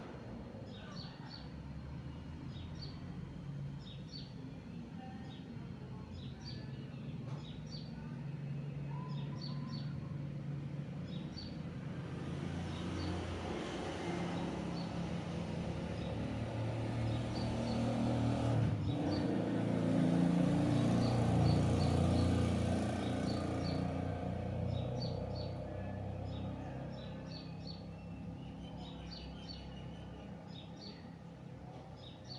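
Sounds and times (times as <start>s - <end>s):
traffic rumble: 0.0s - 32.3s
small birds chirping faintly overhead: 0.6s - 32.3s
motorcycle passing by: 9.1s - 31.3s
car passing by: 10.2s - 29.7s.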